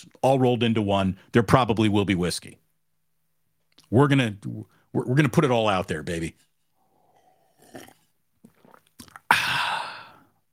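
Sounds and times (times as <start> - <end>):
speech: 0.0 - 2.6, 3.9 - 6.5
person sipping a drink: 6.9 - 10.2
loud breathy exhale: 9.3 - 10.3.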